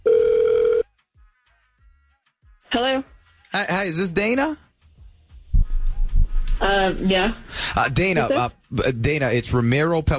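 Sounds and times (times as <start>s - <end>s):
telephone ringback tone on an outgoing call: 0.0s - 0.8s
speech: 2.7s - 4.6s, 6.6s - 10.1s.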